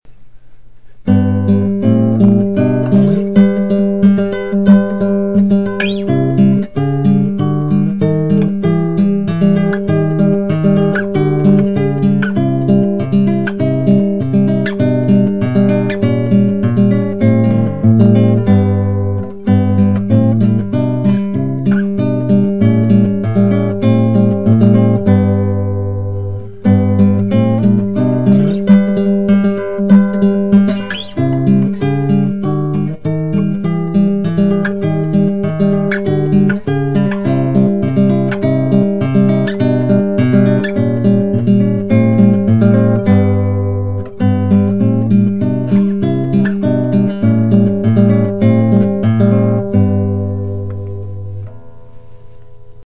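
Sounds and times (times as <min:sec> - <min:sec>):
classical guitar: 0:00.1 - 0:52.8.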